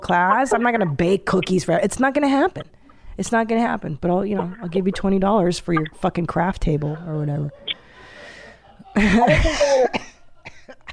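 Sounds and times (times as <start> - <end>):
speech: 0.1 - 7.8, 9.0 - 10.9
quieter breathy sounds: 2.6 - 3.2, 7.6 - 8.8
laughter: 6.6 - 10.7
loud harsh cough into microphone: 9.1 - 10.9.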